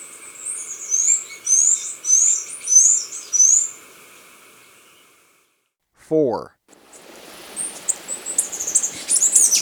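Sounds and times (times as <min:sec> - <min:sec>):
Black-capped hemispingus song in Ecuador: 0:00.2 - 0:03.7, 0:07.6 - 0:09.6
speech: 0:06.1 - 0:06.6.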